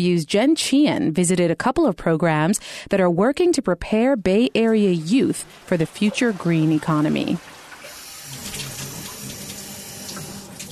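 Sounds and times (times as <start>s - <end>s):
speech: 0.0s - 7.5s
water pouring from a faucet into a sink: 5.4s - 10.6s.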